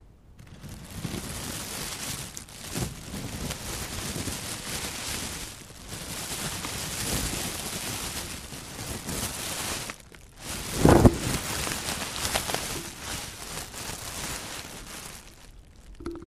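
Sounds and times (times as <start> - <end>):
rustling: 0.4 - 16.2.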